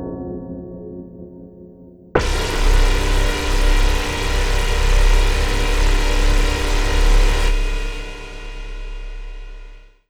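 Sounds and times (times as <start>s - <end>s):
ambience: 2.2s - 9.9s.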